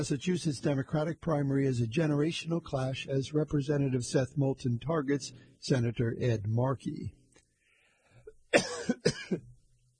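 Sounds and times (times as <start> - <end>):
speech: 0.0 - 7.2
faint breath: 5.3 - 5.6, 7.5 - 8.4
person coughing harshly: 8.5 - 9.5.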